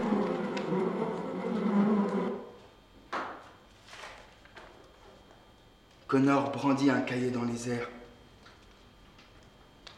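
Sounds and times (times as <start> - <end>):
bee buzzing in a low droning hum: 0.0 - 2.6
speech: 6.1 - 8.0.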